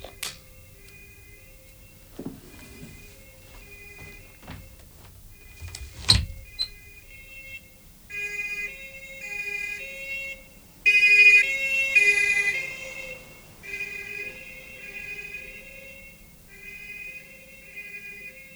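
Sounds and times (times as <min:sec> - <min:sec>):
police siren wailing near a city at night: 0:07.4 - 0:18.5.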